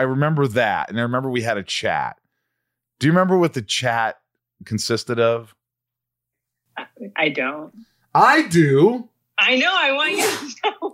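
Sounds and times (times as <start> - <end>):
speech: 0.0 - 2.2, 3.0 - 5.6, 7.0 - 10.9
person sneezing: 10.1 - 10.6.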